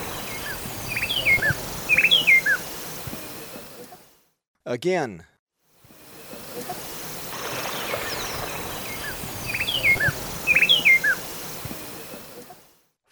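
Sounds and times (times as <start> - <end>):
bar-winged wood-wren singing in Ecuador: 0.0 - 3.3, 7.3 - 12.5
steady hiss: 0.0 - 4.2, 5.8 - 12.8
speech: 4.7 - 5.3.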